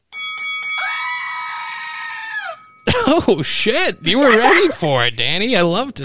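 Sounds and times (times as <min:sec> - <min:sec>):
screaming goat toy used as a bell: 0:00.8 - 0:02.6
laughter: 0:02.9 - 0:05.2
speech: 0:03.1 - 0:06.0.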